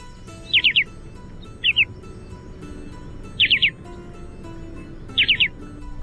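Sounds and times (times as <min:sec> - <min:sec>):
short-billed dowitcher calling with quick whistled notes: 0:00.4 - 0:02.0, 0:03.3 - 0:03.8, 0:05.1 - 0:05.6.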